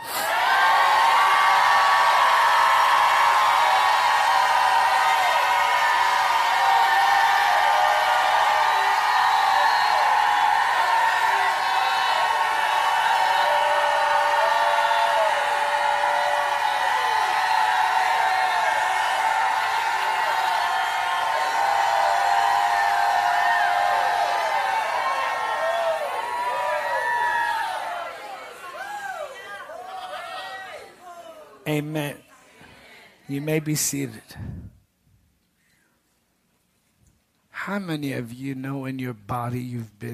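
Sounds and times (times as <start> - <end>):
large crowd at a religious service shouting and whooping: 0.0 - 31.6
speech: 33.3 - 34.7, 37.7 - 40.1.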